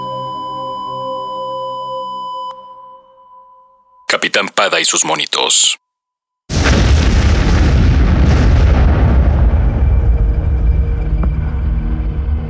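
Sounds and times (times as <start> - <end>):
speech: 4.2 - 5.8
mansion exploding: 6.5 - 11.7.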